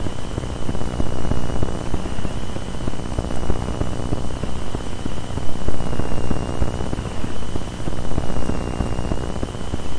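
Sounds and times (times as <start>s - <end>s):
dirty electronic interference noise: 0.0s - 9.9s.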